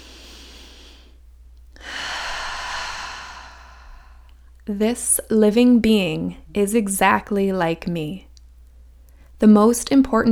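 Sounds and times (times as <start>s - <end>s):
deep breathing in and out: 0.0s - 4.5s
low steady hum: 0.0s - 10.2s
speech: 4.7s - 8.3s, 9.4s - 10.2s.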